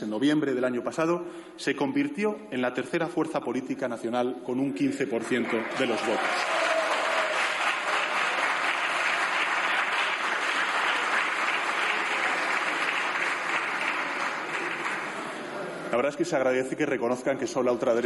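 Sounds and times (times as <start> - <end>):
speech: 0.0 - 6.8, 16.0 - 18.0
large crowd of deputies applauding in a parliament chamber: 5.2 - 15.7.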